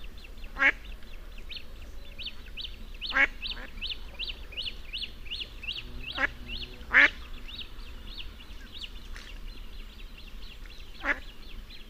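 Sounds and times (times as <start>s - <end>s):
birds twittering: 0.0s - 11.8s
low background noise: 0.0s - 11.8s
mallard quacking: 3.1s - 4.7s, 5.3s - 7.6s, 11.0s - 11.2s.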